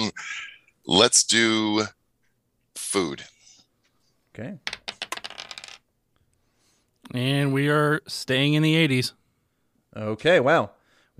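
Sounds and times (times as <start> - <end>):
speech: 0.9 - 2.0, 2.9 - 3.3, 4.4 - 4.7, 7.1 - 9.2, 10.0 - 11.1
dice rattling and clattering: 4.7 - 5.8.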